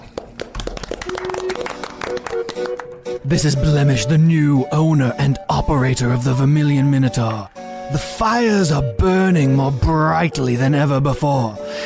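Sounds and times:
sharp hand claps: 0:00.0 - 0:03.2
speech: 0:02.3 - 0:11.8.

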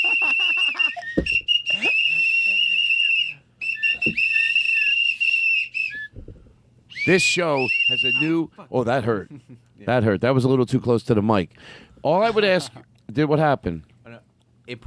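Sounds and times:
laughter: 0:00.0 - 0:02.9
shrill whistles blown by several people: 0:00.0 - 0:08.5
speech: 0:07.1 - 0:13.9, 0:14.7 - 0:14.8.

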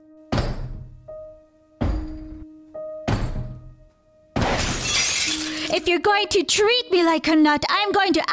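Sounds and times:
chair thudding against a door: 0:00.3 - 0:00.9, 0:03.1 - 0:03.7
chair smashing glass window of door: 0:04.4 - 0:05.9
speech: 0:05.7 - 0:08.3.

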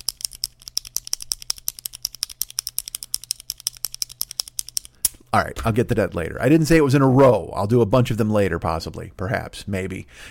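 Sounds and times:
pen clicking: 0:00.0 - 0:05.0
speech: 0:05.3 - 0:10.2.

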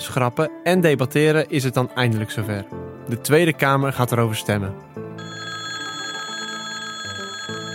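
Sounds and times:
speech: 0:00.1 - 0:04.9
parliament voting call electric bell ringing: 0:05.2 - 0:07.7.

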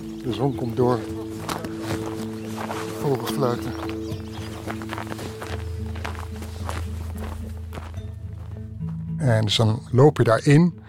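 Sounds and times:
footsteps walking on snow: 0:00.0 - 0:09.2
speech: 0:00.2 - 0:01.2, 0:03.1 - 0:03.9, 0:09.2 - 0:10.8.

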